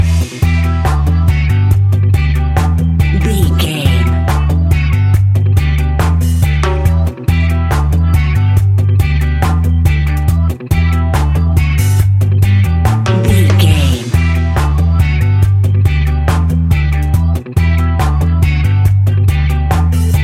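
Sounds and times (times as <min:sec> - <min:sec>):
reggae ska fusion music with skank bounce: 0:00.0 - 0:20.2.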